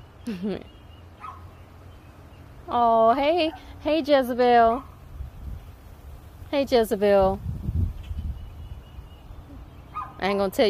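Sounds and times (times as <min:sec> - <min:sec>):
speech: 0:00.2 - 0:00.8, 0:02.7 - 0:04.9, 0:06.5 - 0:07.5, 0:10.2 - 0:10.6
small dog barking: 0:01.2 - 0:01.4, 0:09.9 - 0:10.2.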